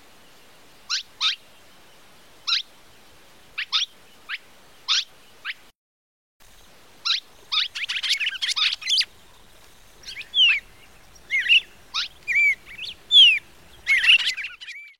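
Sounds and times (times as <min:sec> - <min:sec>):
red-crested cardinal twittering and slurred whistled phrases: 0:07.0 - 0:09.2, 0:10.0 - 0:14.9.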